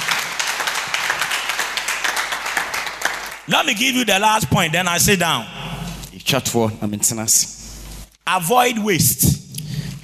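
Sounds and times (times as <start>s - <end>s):
church congregation clapping during a sermon: 0.0s - 4.3s
speech: 3.5s - 5.6s, 6.2s - 7.6s, 8.3s - 9.4s.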